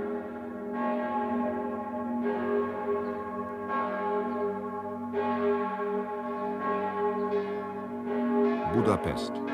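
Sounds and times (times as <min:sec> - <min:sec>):
large church bells of St. Peter pealing in Zurich: 0:00.0 - 0:09.5
speech: 0:08.8 - 0:09.5.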